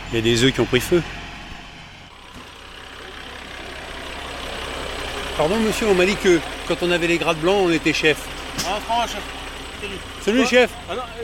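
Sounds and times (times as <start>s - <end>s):
fire truck engine idling in Arsac on Easter Sunday: 0.0s - 11.2s
speech: 0.1s - 1.2s, 5.4s - 11.2s.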